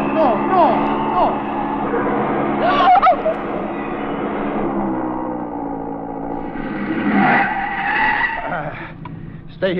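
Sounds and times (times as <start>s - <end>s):
sports car tires squealing on the road: 0.0s - 5.3s, 6.4s - 8.8s
sports car engine roaring: 0.0s - 9.7s.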